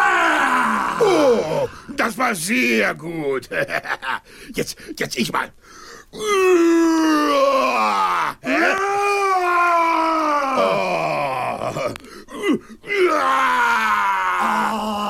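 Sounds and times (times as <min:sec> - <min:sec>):
person imitating a roar with throaty vocal roars: 0:00.0 - 0:01.8, 0:06.2 - 0:12.0, 0:12.9 - 0:15.0
speech: 0:01.0 - 0:11.0.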